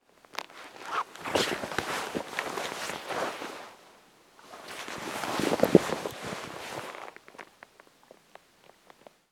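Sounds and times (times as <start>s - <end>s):
clothes rustling: 0.3s - 3.8s, 4.4s - 7.4s.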